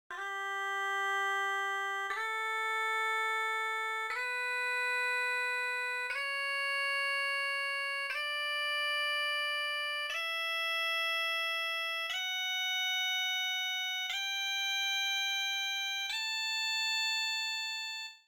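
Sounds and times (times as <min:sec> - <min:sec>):
bagpipe: 0:00.1 - 0:18.1.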